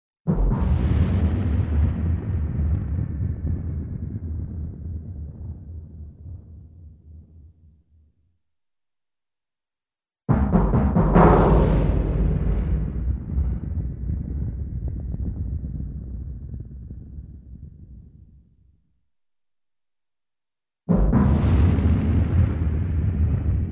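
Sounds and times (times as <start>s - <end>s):
long rolling cartoon explosion: 0.3s - 7.4s, 10.3s - 18.4s, 21.0s - 23.7s
cartoon timpani drum hits: 10.3s - 13.8s, 20.9s - 22.4s.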